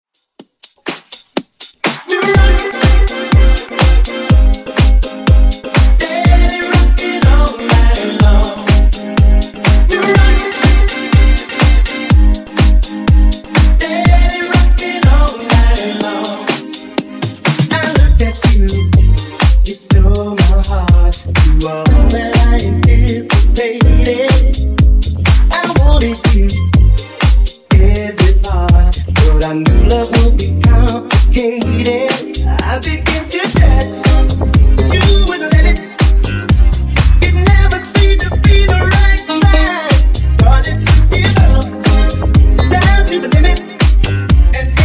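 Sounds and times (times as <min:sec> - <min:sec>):
funk drum loop at 123 bpm: 0:00.2 - 0:44.8.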